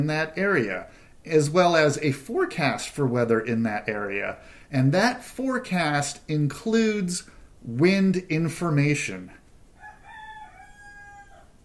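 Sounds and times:
speech: 0:00.0 - 0:09.4
steady hiss of noise: 0:00.0 - 0:11.6
rooster crowing: 0:09.8 - 0:11.6.

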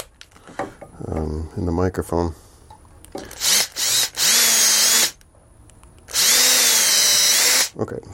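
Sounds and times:
speech: 0:01.3 - 0:02.4, 0:07.8 - 0:08.1
power drill drilling holes in a belt: 0:03.3 - 0:05.2, 0:06.1 - 0:07.7.

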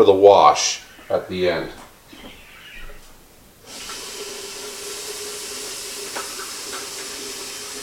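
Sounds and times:
speech: 0:00.0 - 0:02.4
tap water filling a pitcher: 0:03.7 - 0:07.8.

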